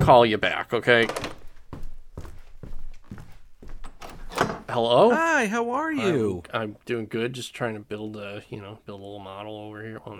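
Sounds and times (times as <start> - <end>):
speech: 0.1 - 1.3, 4.7 - 10.1
footsteps walking to a door: 1.1 - 4.7
door being opened with a dull thunk: 3.8 - 4.7.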